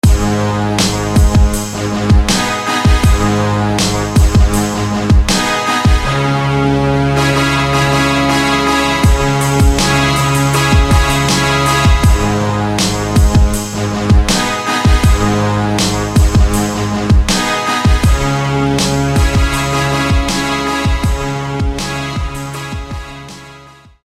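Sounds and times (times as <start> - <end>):
brass band playing: 0.0 - 24.0.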